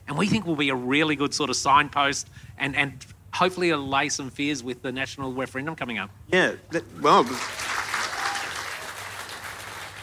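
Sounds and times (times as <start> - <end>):
speech: 0.1 - 7.7
audience clapping: 7.1 - 10.0.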